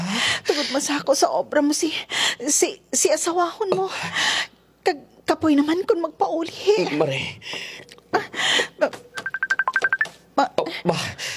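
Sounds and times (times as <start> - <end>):
speech: 0.4 - 9.0, 10.4 - 11.3
short bright electronic beeps of a cellphone ringtone: 9.2 - 10.1
cellphone ringing: 9.2 - 10.2.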